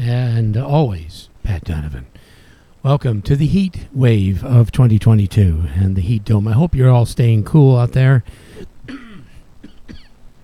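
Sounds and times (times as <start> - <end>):
speech: 0.0 - 9.0
coughing: 8.5 - 10.2.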